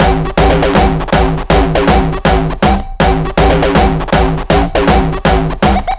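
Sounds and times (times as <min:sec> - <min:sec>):
beat loop: 0:00.0 - 0:05.9.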